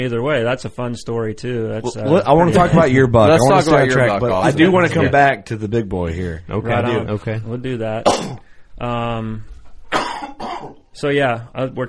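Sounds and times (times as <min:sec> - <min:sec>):
speech: 0:00.0 - 0:09.5, 0:11.0 - 0:11.8
person coughing: 0:08.0 - 0:08.5, 0:09.9 - 0:10.8.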